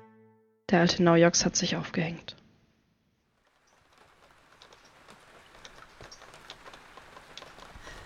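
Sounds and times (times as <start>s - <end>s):
speech: 0.7s - 2.4s
steady rain falling on muddy land: 3.3s - 8.0s.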